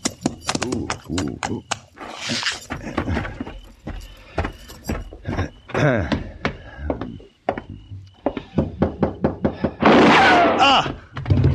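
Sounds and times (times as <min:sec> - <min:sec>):
hoofbeat-like clopping: 0:00.0 - 0:09.7
people talking: 0:00.4 - 0:03.4, 0:05.3 - 0:07.3
gunshot: 0:09.8 - 0:10.6.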